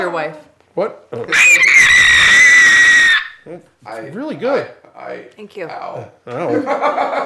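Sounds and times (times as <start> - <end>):
speech: 0.0 - 2.0, 3.4 - 7.2
loud shrill scream distorted from clipping: 1.3 - 3.4
laughter: 6.5 - 7.2.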